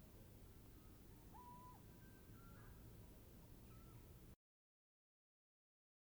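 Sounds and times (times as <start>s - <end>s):
Eurasian Scops Owl hooting: 0.0s - 4.3s
low background hiss: 0.0s - 4.4s.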